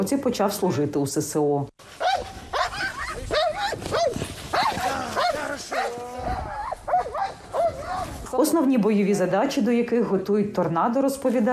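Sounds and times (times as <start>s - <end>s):
speech: 0.0s - 1.8s, 8.4s - 11.5s
service dog barking during training: 2.0s - 8.1s.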